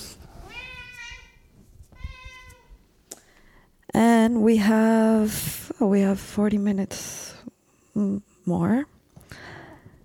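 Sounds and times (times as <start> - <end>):
cat drawn-out meows: 0.4 - 2.8
speech: 4.2 - 7.3, 8.0 - 9.4.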